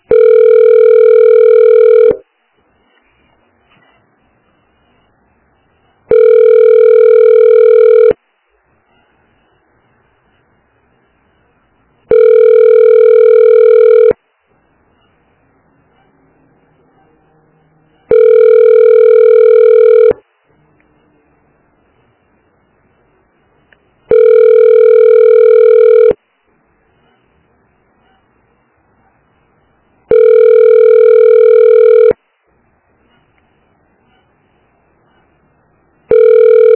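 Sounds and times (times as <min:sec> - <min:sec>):
telephone ringback tone while waiting on hold: 0:00.0 - 0:02.2, 0:06.1 - 0:08.2, 0:12.1 - 0:14.2, 0:18.1 - 0:20.2, 0:24.1 - 0:26.2, 0:30.1 - 0:32.2, 0:36.1 - 0:36.7.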